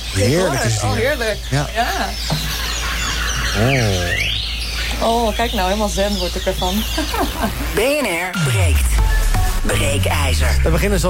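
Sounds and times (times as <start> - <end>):
birds chirping and whistling in an indoor office garden: 0.0 - 9.6
low throaty bird call in an indoor office garden: 0.1 - 7.4
speech: 0.2 - 2.5, 3.6 - 4.2, 5.0 - 11.0
laughter: 2.4 - 4.2, 6.9 - 8.3.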